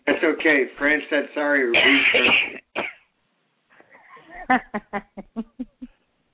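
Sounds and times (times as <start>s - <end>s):
speech: 0.2s - 2.6s, 4.5s - 5.9s
person clearing throat: 1.8s - 3.0s
person coughing: 1.8s - 3.0s
laughter: 4.1s - 5.9s.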